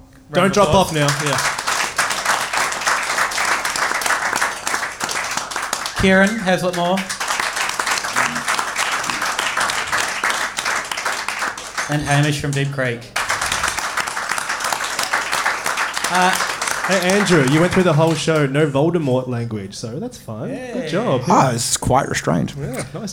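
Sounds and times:
speech: 0.3s - 1.6s, 6.0s - 7.2s, 11.9s - 13.2s, 16.1s - 23.1s
live audience applauding: 0.3s - 18.6s.

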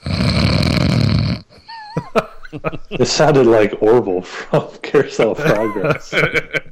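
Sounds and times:
man snoring loudly with a rattle: 0.0s - 1.6s
laughter: 1.7s - 3.6s, 4.6s - 6.7s
speech: 2.2s - 6.7s.

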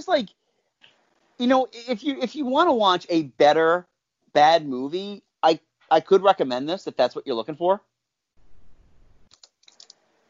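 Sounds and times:
speech: 0.0s - 0.4s, 1.4s - 7.9s
typing on a computer keyboard: 9.3s - 10.0s.

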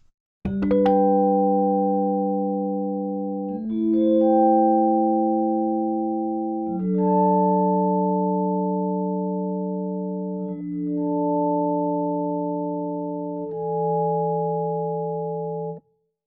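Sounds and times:
sustained electric piano chords with varying attack setting: 0.5s - 15.8s.

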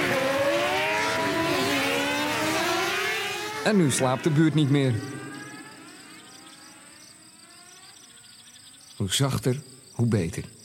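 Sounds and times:
moped engine starting and revving: 0.0s - 8.1s
speech: 3.6s - 5.2s, 9.0s - 10.6s.

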